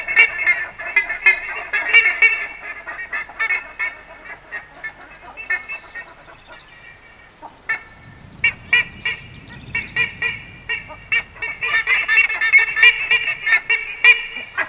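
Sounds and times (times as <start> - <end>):
buff-necked ibis uttering rapid nasal honks: 0.0 - 14.6.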